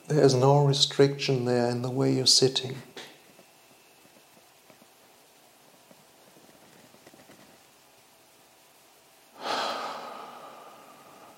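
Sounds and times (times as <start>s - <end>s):
speech: 0.1s - 2.9s
deep breath drawn in during a seated posture and relaxation exercise: 9.4s - 11.3s.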